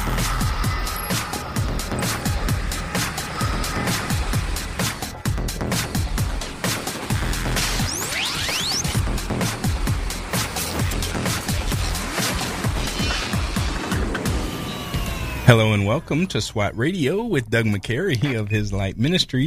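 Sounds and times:
rocket engine roaring at liftoff: 0.0s - 16.6s
speech: 15.5s - 19.4s.

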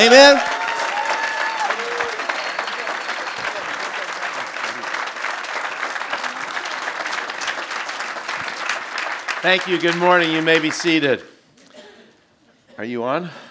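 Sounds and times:
speech: 0.0s - 0.5s, 9.4s - 11.3s, 12.8s - 13.5s
faint voices and cheers: 0.0s - 4.8s
large church crowd applauding: 0.0s - 11.2s.

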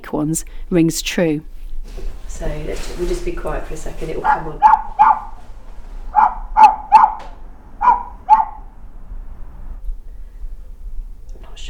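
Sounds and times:
low steady hum: 0.0s - 11.6s
speech: 0.1s - 4.8s
recorded dog barking: 4.2s - 5.5s, 6.1s - 8.8s.

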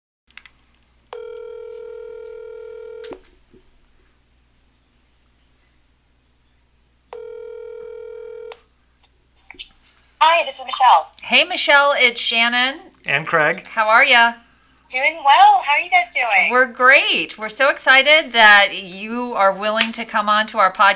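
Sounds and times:
faint hum: 0.3s - 20.9s
phone line electronic ringback tones: 1.1s - 3.2s, 7.1s - 8.7s
speech: 10.4s - 20.9s.

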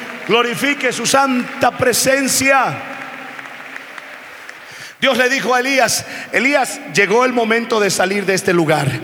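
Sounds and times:
church audience applauding: 0.0s - 6.5s
speech: 0.3s - 3.0s, 5.0s - 9.0s.

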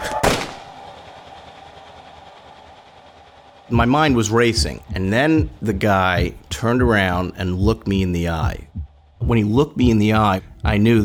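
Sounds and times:
AK-47 machine gun gunshot: 0.0s - 0.8s
fainter burst of AK-47 machine gun fire: 0.0s - 1.2s
speech: 3.7s - 8.7s, 9.3s - 11.0s.

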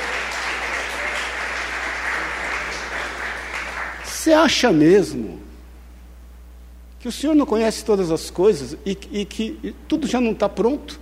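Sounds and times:
crowd clapping: 0.0s - 4.3s
speech: 4.2s - 5.4s, 7.0s - 11.0s.

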